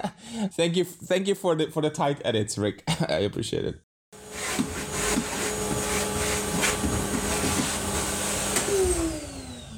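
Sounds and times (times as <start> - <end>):
speech: 0.3 - 3.9
vacuum cleaner running: 4.2 - 9.7
vacuum cleaner bumps and knocks as it moves: 4.6 - 9.0.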